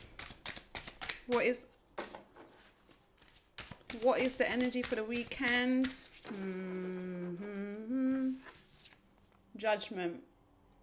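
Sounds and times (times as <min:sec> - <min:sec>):
tarot cards being shuffled and drawn: 0:00.0 - 0:06.8, 0:08.2 - 0:09.4
speech: 0:01.3 - 0:01.8, 0:03.9 - 0:08.5, 0:09.6 - 0:10.3
soft voice sounds: 0:06.3 - 0:08.6.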